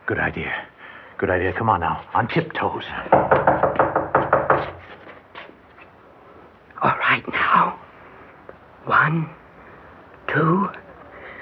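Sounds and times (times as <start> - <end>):
speech: 0.1 - 3.6, 7.2 - 7.9, 8.8 - 9.4, 10.3 - 10.8
firm knocking on a door: 3.0 - 4.8.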